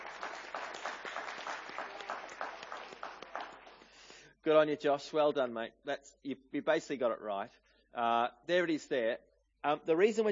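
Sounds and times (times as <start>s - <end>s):
small group clapping at a church gathering: 0.0s - 4.2s
speech: 4.4s - 10.3s.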